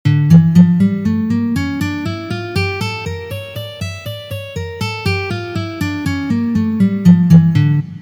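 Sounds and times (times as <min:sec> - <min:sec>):
G harmonic minor scale played in fifth position: 0:00.1 - 0:07.9.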